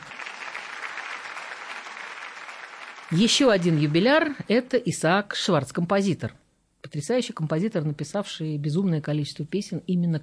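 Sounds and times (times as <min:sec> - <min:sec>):
crowd applauding: 0:00.0 - 0:04.5
speech: 0:03.1 - 0:10.2.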